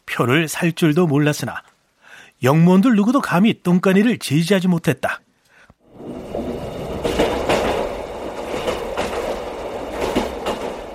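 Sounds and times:
speech: 0.2 - 1.7, 2.4 - 5.2
train arriving at station rumbling: 5.8 - 10.9.

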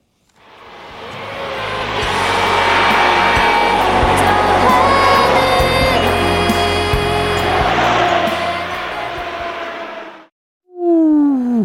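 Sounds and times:
car rushing past: 0.4 - 10.3
music blaring from a passing car: 1.6 - 9.4.

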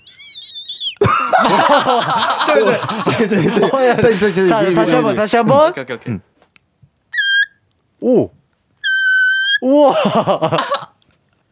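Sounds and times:
laughter: 1.0 - 5.7, 9.8 - 10.9
speech: 1.4 - 6.3, 8.0 - 8.4, 9.6 - 10.8
person imitating dolphin calls with shrill squealing whistles: 7.2 - 10.0.

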